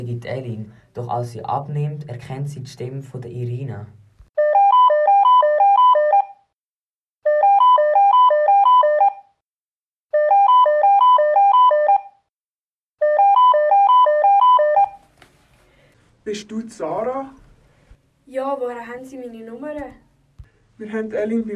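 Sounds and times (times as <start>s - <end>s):
speech: 0.0s - 4.0s, 16.3s - 17.4s, 18.3s - 20.0s, 20.8s - 21.5s
mobile phone ringing with a bright melodic electronic ringtone: 4.4s - 6.4s, 7.2s - 9.3s, 10.1s - 12.2s, 13.0s - 15.0s.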